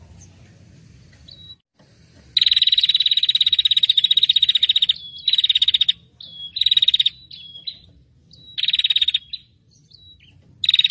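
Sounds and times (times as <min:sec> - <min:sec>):
prinia high quick-ticking chatter: 0:02.4 - 0:09.6.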